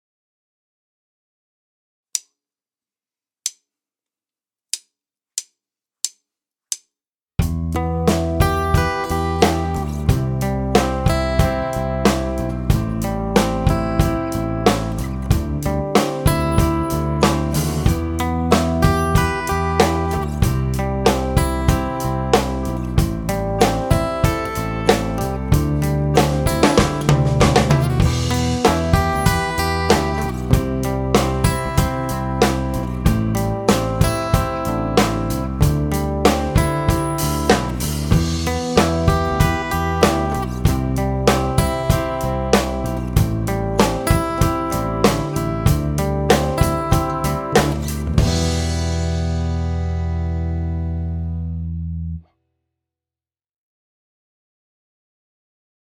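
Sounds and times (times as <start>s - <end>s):
improvised music with E and G: 7.4s - 52.1s.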